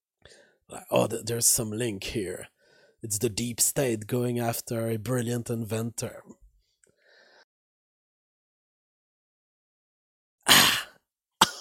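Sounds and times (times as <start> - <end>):
speech: 0.7 - 6.4
person coughing harshly: 10.5 - 11.6.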